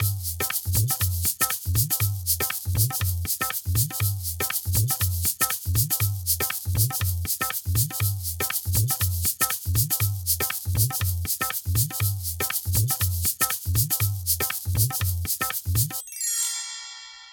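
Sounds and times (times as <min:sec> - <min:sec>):
shaker in tribal ethnic rhythm: 0:00.0 - 0:16.2
chimes: 0:16.0 - 0:17.3.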